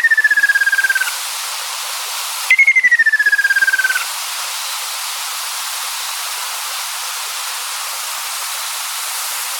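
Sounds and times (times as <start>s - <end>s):
ruddy kingfisher calling with long falling trilled whistles: 0.0s - 1.2s, 2.5s - 4.1s
soft hiss: 0.0s - 9.5s.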